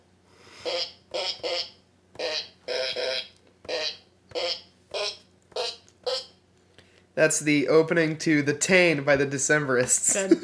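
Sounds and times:
fart piano playing a simple tune: 0.6s - 6.4s
speech: 7.2s - 10.4s.

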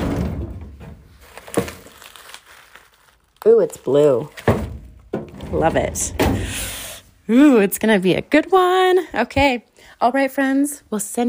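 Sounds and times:
soft rustling of items shuffled in a drawer: 0.0s - 6.4s
speech: 3.4s - 4.4s, 5.5s - 6.7s, 7.3s - 11.2s.

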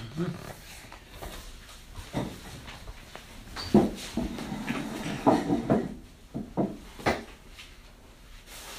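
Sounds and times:
faint room noise: 0.0s - 8.7s
patient footsteps on a hard floor during a medical examination: 0.9s - 5.9s.

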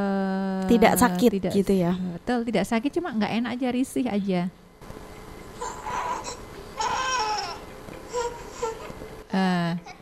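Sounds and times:
speech: 0.7s - 4.6s, 9.3s - 10.0s
fussy baby crying, whiny rather than pained: 5.6s - 9.0s.

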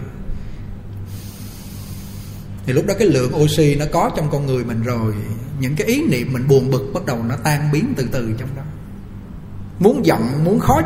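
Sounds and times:
deep inhale and exhale: 0.2s - 2.6s
speech: 2.6s - 8.8s, 9.8s - 10.8s.

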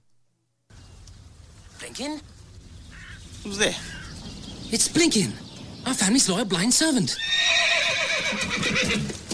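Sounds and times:
speech: 1.8s - 2.3s, 3.4s - 4.0s, 4.7s - 9.2s
horse neighing with a quavering pitch: 7.2s - 9.2s.

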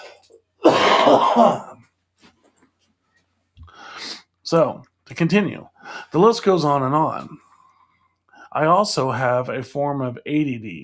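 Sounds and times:
harsh wet cough from a person with pneumonia: 0.0s - 1.8s
speech: 0.6s - 1.7s, 4.5s - 7.4s, 8.5s - 10.8s.

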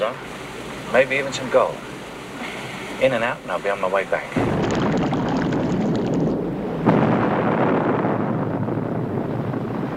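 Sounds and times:
speech: 0.0s - 0.3s, 0.9s - 1.9s, 3.0s - 4.6s
steady low rumble of churning, wind-like noise: 0.0s - 9.9s
explosion: 4.3s - 9.8s.

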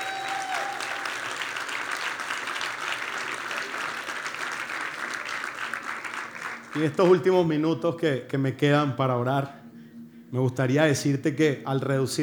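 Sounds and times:
large crowd applauding: 0.0s - 7.2s
speech: 6.8s - 9.6s, 10.3s - 12.2s.

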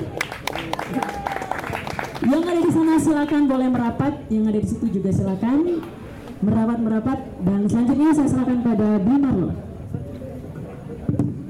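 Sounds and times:
audience applause: 0.0s - 2.7s
murmur of voices in the crowd: 0.0s - 11.4s
speech: 2.2s - 10.1s.

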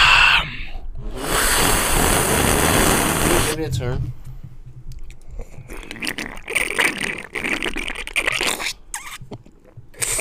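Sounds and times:
loud wet slurping into microphone: 1.2s - 3.6s, 5.2s - 10.1s
speech: 3.8s - 4.2s.

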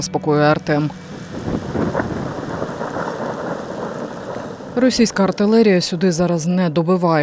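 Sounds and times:
speech: 0.0s - 1.6s, 4.8s - 7.2s
deep rolling thunder rumbling: 0.7s - 7.2s
steady downpour of rain: 1.0s - 6.4s.

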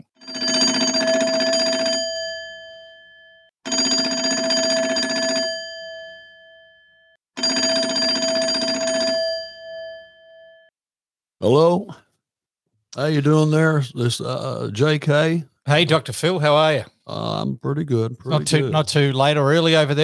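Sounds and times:
telephone ringing as outgoing call is dialed: 0.0s - 6.7s, 7.4s - 10.5s
speech: 11.4s - 12.0s, 13.0s - 20.0s.

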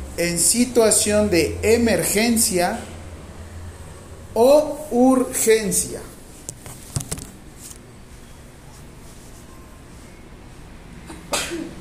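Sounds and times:
steady low hum: 0.0s - 11.7s
speech: 0.2s - 2.9s, 4.4s - 6.1s
person sneezing: 11.1s - 11.7s.

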